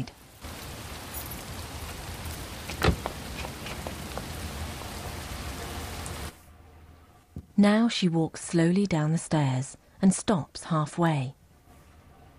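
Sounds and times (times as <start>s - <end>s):
steady dense rain pouring down: 0.0s - 6.4s
speech: 7.6s - 11.4s.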